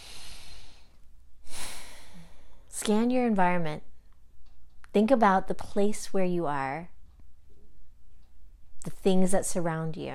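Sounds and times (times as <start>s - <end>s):
slow deep breath in a calm guided reflection: 0.0s - 2.7s
speech: 2.8s - 3.9s, 4.9s - 6.9s, 8.8s - 10.1s.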